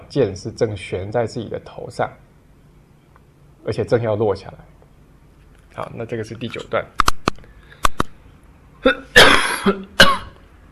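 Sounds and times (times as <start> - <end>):
speech: 0.1 - 2.3, 3.6 - 4.7, 5.8 - 7.1, 8.8 - 10.0
person coughing: 8.8 - 10.4.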